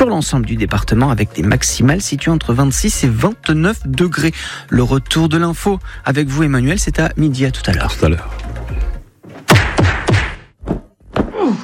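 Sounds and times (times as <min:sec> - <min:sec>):
speech: 0:00.0 - 0:08.9
punch sound effects: 0:09.5 - 0:10.6.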